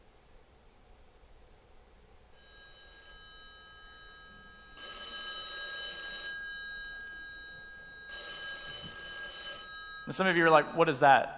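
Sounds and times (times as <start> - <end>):
old-fashioned telephone bell ringing: 2.3 - 11.0
speech: 10.1 - 11.3.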